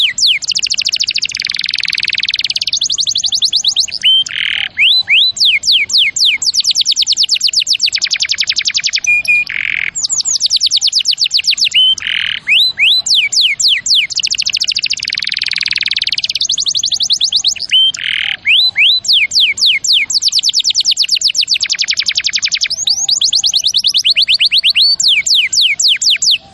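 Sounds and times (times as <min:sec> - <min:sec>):
champion canary song in rolling trills: 0:00.0 - 0:26.5.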